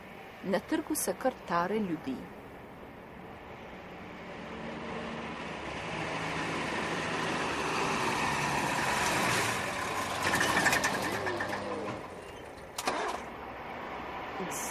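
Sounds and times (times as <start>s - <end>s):
cars and engines passing in city traffic: 0.0s - 14.6s
speech: 0.4s - 2.4s
sharp mechanical whine or squeal: 10.2s - 12.6s.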